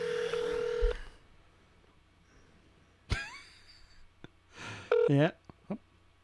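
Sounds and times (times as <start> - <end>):
steady phone tone: 0.0 - 1.2, 4.9 - 5.2.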